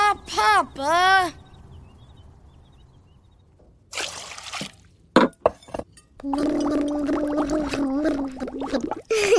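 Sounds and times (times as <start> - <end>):
speech: 0.6 - 1.4, 6.2 - 9.1
child slurping soup: 6.2 - 9.1.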